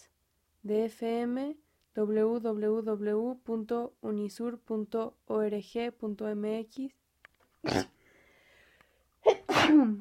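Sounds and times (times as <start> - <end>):
speech: 0.6 - 7.0, 7.6 - 8.0
person sneezing: 9.2 - 10.0.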